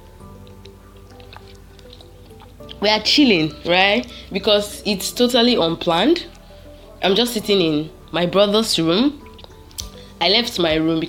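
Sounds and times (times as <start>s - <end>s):
person drinking water: 0.3s - 2.8s
speech: 2.7s - 6.3s, 7.0s - 9.2s, 10.2s - 11.0s.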